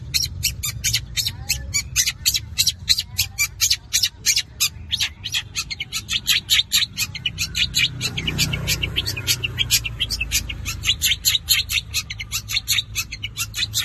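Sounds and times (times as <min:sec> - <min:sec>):
long-tailed shrike harsh chattering combination song: 0:00.0 - 0:13.8.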